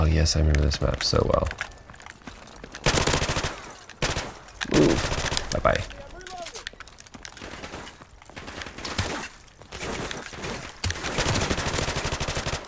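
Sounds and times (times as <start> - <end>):
speech: 0.1 - 1.7
rapid gunfire in a video game: 2.8 - 5.6, 7.4 - 12.6.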